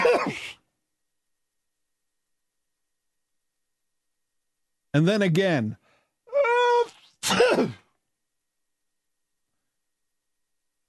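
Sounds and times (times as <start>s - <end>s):
person sneezing: 0.0s - 0.6s, 6.7s - 7.9s
speech: 4.9s - 5.8s, 7.3s - 7.8s.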